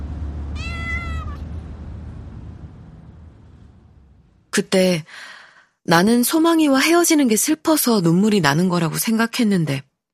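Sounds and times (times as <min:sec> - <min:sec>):
steady low rumble: 0:00.0 - 0:04.8
drawn-out cat meow: 0:00.6 - 0:01.4
speech: 0:04.6 - 0:09.9.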